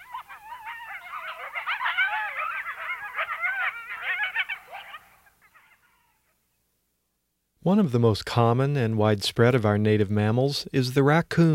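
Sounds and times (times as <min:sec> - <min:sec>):
coyote chorus of quavering yips and short howls: 0:00.0 - 0:06.6
speech: 0:07.6 - 0:11.5.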